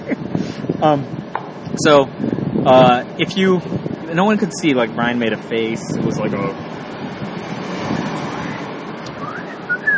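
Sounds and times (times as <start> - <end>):
rushing noise: 0.0 - 9.9
speech: 0.6 - 1.2, 1.8 - 6.8
person whistling: 9.2 - 9.9.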